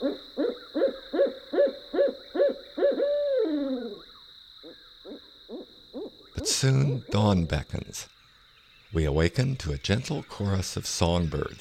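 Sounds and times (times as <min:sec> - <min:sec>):
speech: 0:00.0 - 0:00.3, 0:06.5 - 0:08.2, 0:08.9 - 0:11.5
owl hooting at night outside campers' tents: 0:00.0 - 0:07.6.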